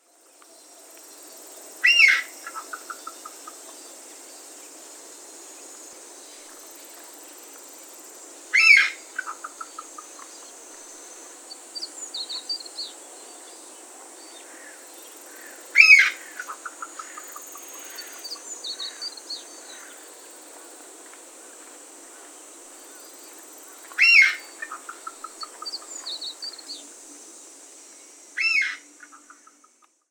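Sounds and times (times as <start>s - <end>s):
Chinese bamboo partridge calls: 1.8s - 3.6s, 14.4s - 20.0s, 23.9s - 26.8s, 28.4s - 29.9s.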